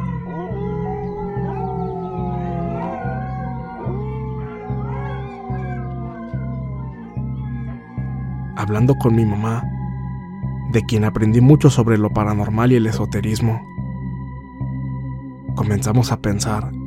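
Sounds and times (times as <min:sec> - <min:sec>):
several dogs howling together: 0:00.0 - 0:09.2
speech: 0:08.7 - 0:09.7, 0:10.7 - 0:13.7, 0:15.6 - 0:16.8.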